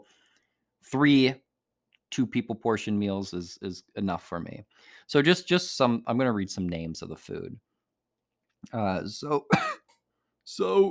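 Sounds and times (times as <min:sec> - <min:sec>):
speech: 0:00.9 - 0:01.4, 0:02.1 - 0:07.7, 0:08.6 - 0:09.8, 0:10.4 - 0:10.8
coughing and throat clearing: 0:09.4 - 0:10.0.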